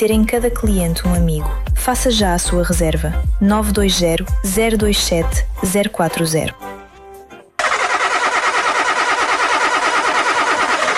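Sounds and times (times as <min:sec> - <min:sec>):
speech: 0:00.0 - 0:06.7
car engine cranking without starting: 0:07.6 - 0:10.9.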